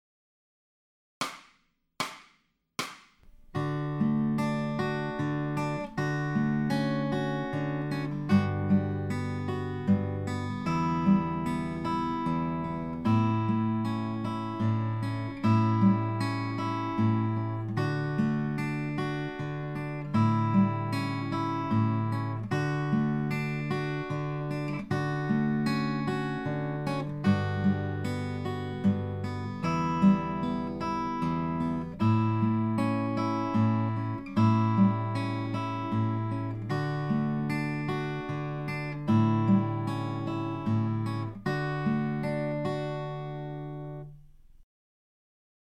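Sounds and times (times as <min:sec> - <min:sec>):
fingerstyle acoustic guitar: 0:03.2 - 0:44.6.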